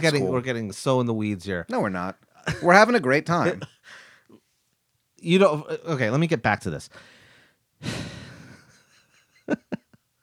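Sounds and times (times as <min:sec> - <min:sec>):
speech: 0:00.0 - 0:04.0, 0:05.2 - 0:07.2
really big breath: 0:03.8 - 0:04.4, 0:06.9 - 0:08.7.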